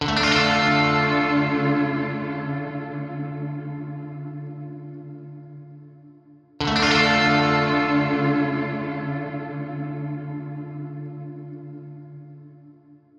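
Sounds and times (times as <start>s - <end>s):
guitar with no diffusion: 0.0s - 6.0s, 6.6s - 13.0s.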